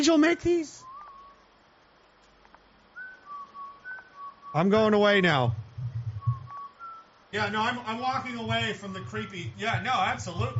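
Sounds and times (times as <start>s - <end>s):
speech: 0.0s - 0.8s, 4.5s - 5.6s, 7.3s - 10.5s
faint steady hiss: 0.0s - 10.5s
person whistling a short tune: 0.8s - 1.4s, 3.0s - 4.8s, 6.0s - 7.2s.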